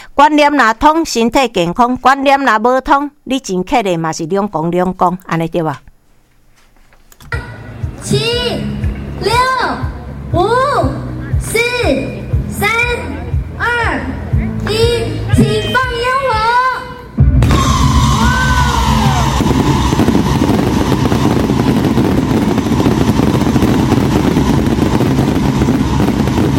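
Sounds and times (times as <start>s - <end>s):
speech: 0.2s - 5.9s, 8.0s - 16.1s
fireworks exploding in a dense continuous crackle: 17.3s - 26.5s
excited voices shouting and whooping: 17.4s - 19.4s.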